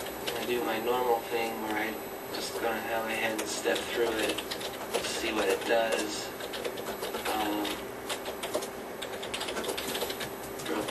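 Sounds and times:
speech: 0.5 - 6.4
typing on a computer keyboard: 3.2 - 10.8.

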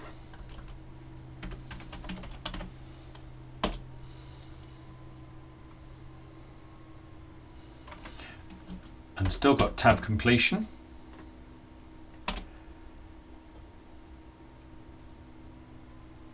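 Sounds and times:
steady low hum: 0.0 - 16.3
typing a command on a computer keyboard at a server console: 1.4 - 2.7, 3.6 - 3.8, 7.9 - 10.1, 12.2 - 12.5
speech: 9.3 - 10.8.

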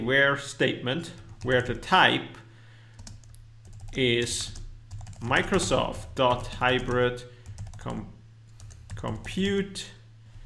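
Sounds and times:
speech: 0.0 - 2.4, 3.9 - 4.6, 5.2 - 8.2, 9.0 - 10.0
computer keyboard typing a database query: 2.9 - 7.8, 8.6 - 9.4.

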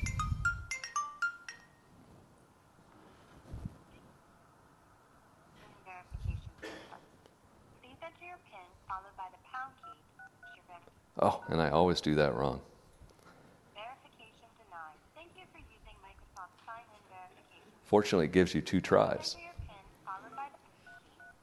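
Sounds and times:
mobile phone melodic electronic ringtone: 0.0 - 1.9, 20.2 - 21.4
speech: 11.2 - 12.7, 17.9 - 19.5.

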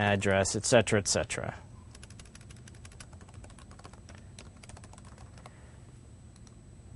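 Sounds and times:
speech: 0.0 - 1.7
steady low hum: 0.0 - 6.9
code typed on a computer keyboard: 1.9 - 5.6.

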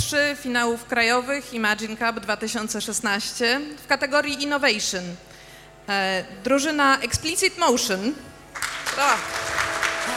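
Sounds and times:
speech: 0.0 - 8.3, 9.0 - 9.6
audience applause: 8.6 - 10.1.

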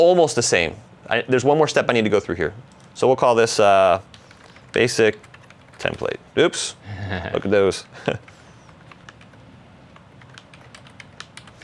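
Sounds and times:
speech: 0.0 - 8.4
low hum: 0.0 - 11.6
typing on a computer keyboard: 4.1 - 6.1, 8.1 - 11.6.

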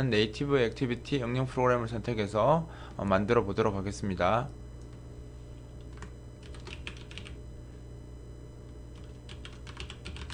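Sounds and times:
speech: 0.0 - 4.6
low steady hum: 0.0 - 10.3
keystrokes on a computer keyboard typing a project name: 5.8 - 7.4, 9.0 - 10.3.

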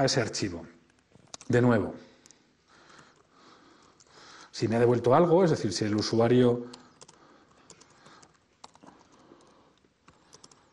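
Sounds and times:
speech: 0.0 - 0.8, 1.5 - 2.1, 4.6 - 6.8
typing on a computer keyboard: 0.9 - 1.5, 6.7 - 10.7.

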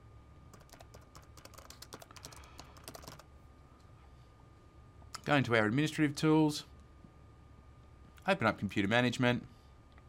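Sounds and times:
low steady hum: 0.0 - 10.0
typing on a computer keyboard: 0.5 - 3.3
speech: 5.3 - 6.7, 8.2 - 9.6.

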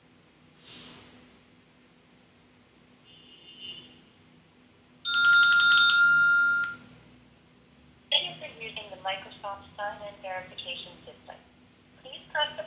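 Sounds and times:
phone ringtone for an incoming authentication call: 5.1 - 6.8.

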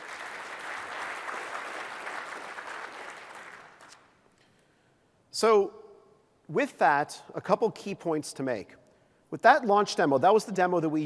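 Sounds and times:
audience clapping after a demo: 0.0 - 4.2
speech: 5.4 - 5.8, 6.5 - 11.0.

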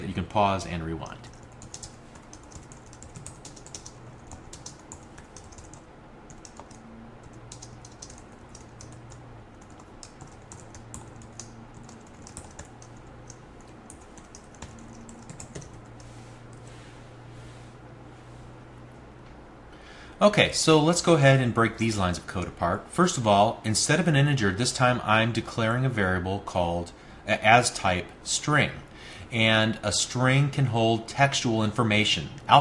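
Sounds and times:
faint low hum: 0.0 - 32.5
speech: 0.3 - 1.3, 20.2 - 32.5
typing on a computer keyboard: 1.3 - 15.8.

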